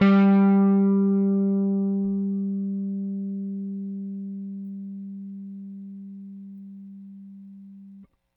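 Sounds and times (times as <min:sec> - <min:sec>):
bass guitar: 0:00.0 - 0:08.0.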